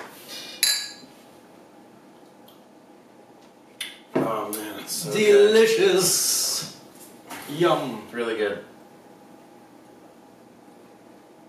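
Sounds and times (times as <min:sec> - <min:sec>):
beer glasses clinking in a toast: 0:00.6 - 0:01.1
speech: 0:04.3 - 0:06.8, 0:07.5 - 0:08.7.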